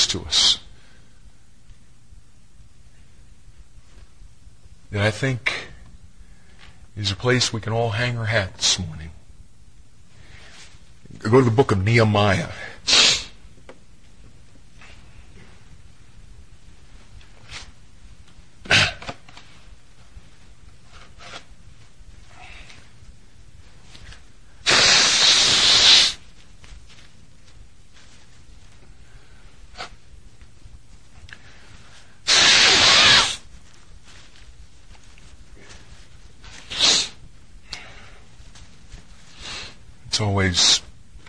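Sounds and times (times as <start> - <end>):
speech: 0.1 - 0.4, 4.9 - 5.7, 7.0 - 9.2, 11.2 - 13.1
soft rustles: 2.9 - 4.8, 10.0 - 11.4, 13.5 - 18.6, 19.2 - 24.6, 26.2 - 32.2, 33.4 - 40.0
person blowing nose in public: 12.8 - 13.4, 24.6 - 26.3, 32.2 - 33.5, 36.6 - 37.2, 39.3 - 39.8.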